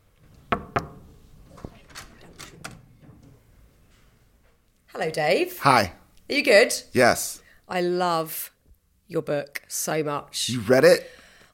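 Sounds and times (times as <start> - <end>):
knocking on a wooden hotel suite door: 0.5 - 1.0
door handle noises: 0.6 - 3.4
faint rustling: 1.1 - 4.9
speech: 5.0 - 8.5, 9.1 - 11.2.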